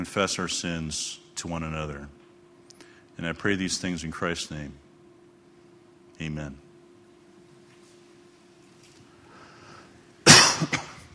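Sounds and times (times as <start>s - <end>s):
speech: 0.0s - 2.2s, 3.2s - 4.8s, 6.2s - 6.6s
person coughing: 10.2s - 11.1s.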